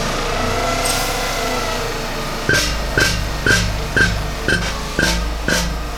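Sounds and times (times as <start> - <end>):
drilling rig engine rumbling: 0.0 - 5.9
drilling rig rhythmic heavy pounding: 2.5 - 5.9.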